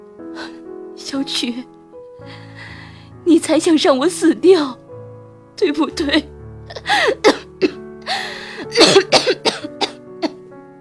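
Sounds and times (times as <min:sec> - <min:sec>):
speech: 0:01.0 - 0:02.7, 0:03.3 - 0:04.8, 0:05.6 - 0:07.7
strained raspy gasps: 0:02.3 - 0:03.1, 0:06.7 - 0:07.3, 0:08.0 - 0:08.8
person coughing: 0:06.7 - 0:07.8, 0:08.6 - 0:10.4.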